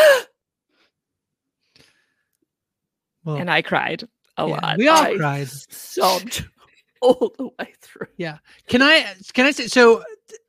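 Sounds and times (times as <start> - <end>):
speech: 3.2 - 10.4
laughter: 4.8 - 6.4
person imitating a sharp startled gasp: 6.0 - 6.4.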